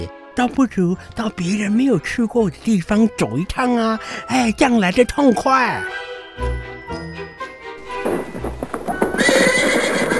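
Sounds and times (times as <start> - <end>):
speech: 0.0 - 6.7
horse-drawn carriage hooves clip-clopping setting off: 7.8 - 10.1
jingling horse harness: 7.8 - 10.1
horse whinnying: 7.9 - 10.1.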